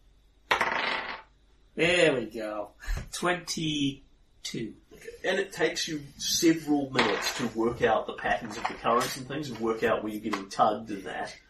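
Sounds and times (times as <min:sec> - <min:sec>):
dice rolling on a hard table: 0:00.5 - 0:01.3, 0:07.0 - 0:07.6, 0:08.4 - 0:09.2
speech: 0:01.8 - 0:11.4.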